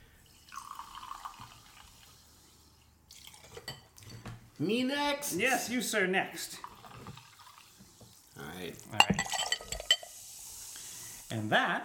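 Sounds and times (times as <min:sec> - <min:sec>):
soda poured into glasses: 0:00.2 - 0:04.1, 0:06.5 - 0:11.3
speech: 0:04.6 - 0:06.7, 0:08.6 - 0:09.4, 0:11.4 - 0:11.8.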